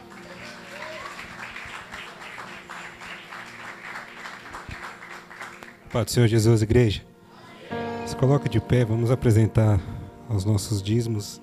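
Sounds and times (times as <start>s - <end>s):
audience in a church applauding: 0.0s - 6.1s
speech: 5.9s - 7.1s, 8.2s - 11.4s.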